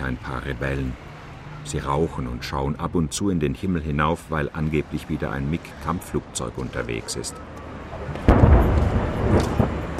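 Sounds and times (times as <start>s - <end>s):
speech: 0.1s - 7.6s
artillery fire from a rebel militia gun position: 8.1s - 9.9s.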